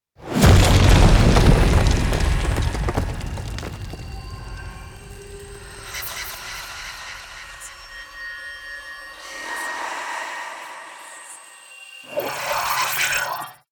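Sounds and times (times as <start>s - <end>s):
meteor crash: 0.2s - 7.7s.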